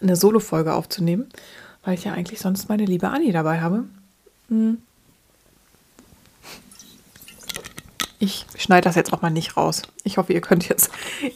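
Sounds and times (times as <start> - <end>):
speech: 0.0 - 4.9, 8.2 - 11.3
quick sip of a drink with mouth and swallowing sounds: 6.6 - 8.2.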